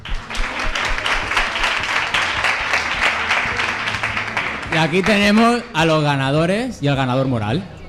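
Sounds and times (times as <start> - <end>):
audience applauding: 0.0 - 6.1
speech: 4.8 - 7.8.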